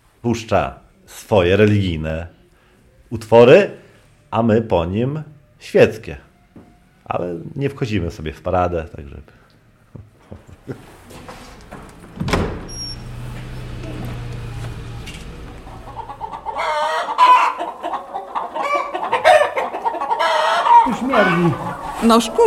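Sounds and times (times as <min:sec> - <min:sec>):
speech: 0:00.2 - 0:02.4, 0:03.1 - 0:06.3, 0:07.1 - 0:09.4, 0:21.4 - 0:22.4
hens clucking and squawking in a busy henhouse: 0:13.6 - 0:22.4.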